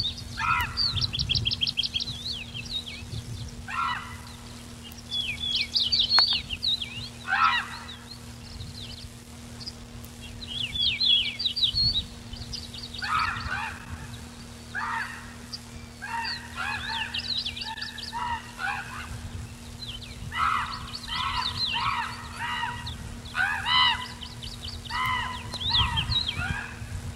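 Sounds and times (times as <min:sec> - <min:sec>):
Corvus corax calling: 0:00.1 - 0:02.9, 0:03.6 - 0:08.7, 0:11.0 - 0:19.5, 0:20.2 - 0:27.1.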